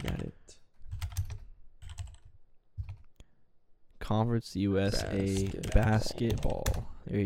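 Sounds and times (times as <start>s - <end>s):
typing on a computer keyboard: 0.0s - 3.1s, 5.2s - 6.9s
speech: 4.1s - 7.2s.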